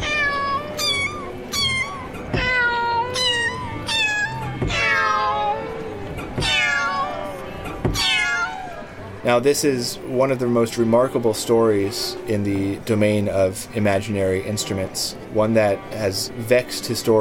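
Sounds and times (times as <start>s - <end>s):
cats meowing presented as a cat piano: 0.0s - 9.0s
speech: 9.3s - 17.1s.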